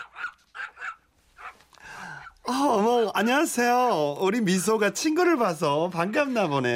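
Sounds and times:
small Pekingese dog barking excitedly on a walk: 0.0 - 1.6
speech: 2.5 - 6.7.

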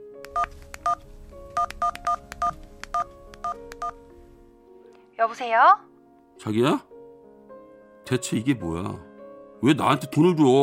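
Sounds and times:
speech: 0.4 - 2.2, 5.2 - 6.9, 8.1 - 10.6
touch-tone phone keypad beeps: 1.6 - 4.0.

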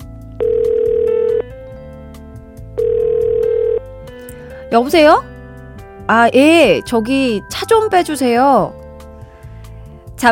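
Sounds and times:
telephone ringback tone while calling: 0.4 - 1.5, 2.8 - 4.0
speech: 4.7 - 5.3, 6.1 - 8.8.

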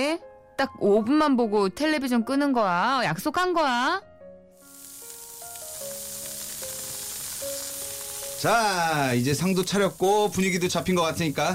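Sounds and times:
speech: 0.0 - 4.1, 8.4 - 11.5
meat sizzling on a grill: 4.6 - 11.5.

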